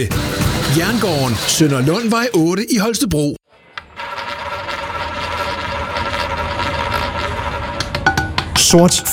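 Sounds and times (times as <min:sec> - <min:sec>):
speech: 0:00.0 - 0:03.4, 0:08.7 - 0:09.1
live casino roulette wheel spinning: 0:00.4 - 0:02.4, 0:03.8 - 0:09.1
roulette ball rattling and clicking around the wheel: 0:03.8 - 0:09.1.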